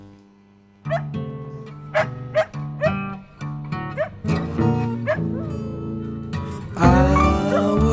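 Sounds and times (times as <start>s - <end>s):
dog barking and whining in a rock song: 0.9s - 1.1s, 1.9s - 3.1s, 3.8s - 5.7s, 7.0s - 7.8s.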